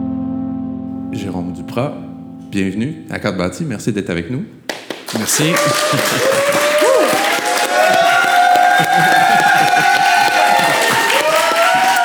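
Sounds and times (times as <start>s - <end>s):
speech: 1.1s - 6.6s, 9.0s - 10.0s
crowd applauding: 4.7s - 12.0s
laughter: 4.8s - 12.0s.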